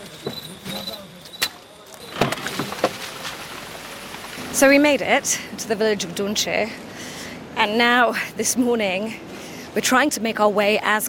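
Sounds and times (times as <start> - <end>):
clunks and rattles of the truck cab jolting: 0.0 - 4.4
truck engine hum on a muddy winding road: 0.0 - 11.0
speech: 4.6 - 6.9, 7.6 - 11.0.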